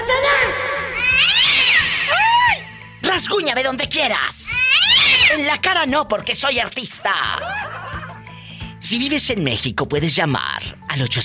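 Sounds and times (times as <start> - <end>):
cat meowing: 0.9 - 2.2, 4.5 - 5.4
speech: 3.2 - 7.6, 8.8 - 11.2.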